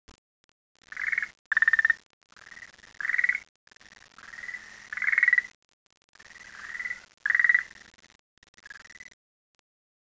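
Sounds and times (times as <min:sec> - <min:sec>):
frog croaking: 0:00.8 - 0:03.5, 0:04.1 - 0:05.6, 0:06.2 - 0:07.9, 0:08.5 - 0:09.2.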